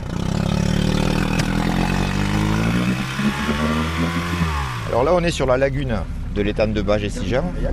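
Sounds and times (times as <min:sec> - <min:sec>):
motorboat engine droning on a shallow saltwater lagoon in France: 0:00.0 - 0:07.7
speech: 0:05.0 - 0:07.7.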